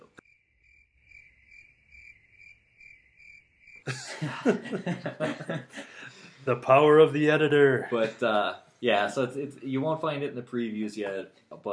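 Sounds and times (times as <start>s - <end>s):
crickets chirping: 0.1s - 6.1s
loud burst of laughter or coughing: 3.9s - 6.2s
speech: 3.9s - 11.7s.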